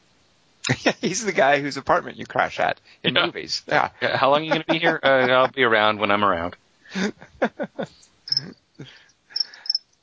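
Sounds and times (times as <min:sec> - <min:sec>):
laughter: 0:00.7 - 0:01.4, 0:03.7 - 0:05.7, 0:06.9 - 0:08.6
low voice-like sounds: 0:00.7 - 0:07.1
speech: 0:00.7 - 0:09.0
crickets chirping in an apartment: 0:07.6 - 0:10.0.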